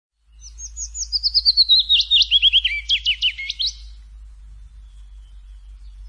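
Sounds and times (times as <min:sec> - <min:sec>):
willow warbler singing a descending phrase in the forest: 0:00.2 - 0:06.0.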